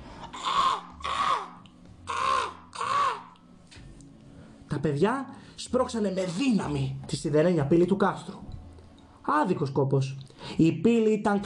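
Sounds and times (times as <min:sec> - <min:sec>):
black crows with ash-coloured beaks cawing around a stone castle: 0:00.3 - 0:03.4
speech: 0:04.8 - 0:08.4, 0:09.3 - 0:11.4.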